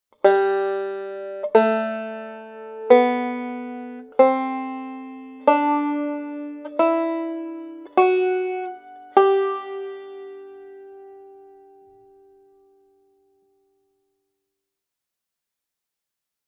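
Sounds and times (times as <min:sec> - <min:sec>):
G scale played: 0:00.3 - 0:12.0.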